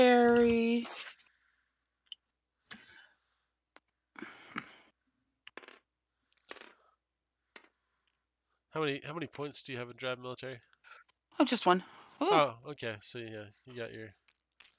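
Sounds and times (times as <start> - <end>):
dice rolling on a table: 5.5 - 6.8, 7.6 - 8.2, 14.3 - 14.7
speech: 8.8 - 10.7, 11.4 - 14.2.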